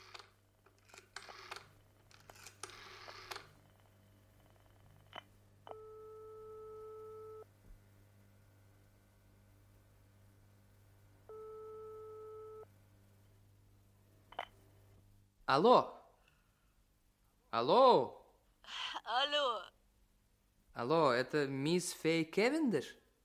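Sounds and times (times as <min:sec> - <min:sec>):
electronic telephone ringing tone on the line: 0:05.7 - 0:07.5, 0:11.3 - 0:12.7
speech: 0:15.5 - 0:16.0, 0:17.6 - 0:19.6, 0:20.8 - 0:23.0.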